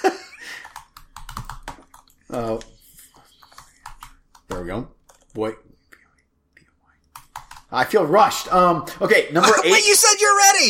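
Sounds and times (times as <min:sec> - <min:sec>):
typing on a computer keyboard: 0:00.6 - 0:02.2, 0:03.4 - 0:05.4, 0:07.1 - 0:07.7
speech: 0:02.3 - 0:02.7, 0:04.6 - 0:05.7, 0:07.7 - 0:10.6.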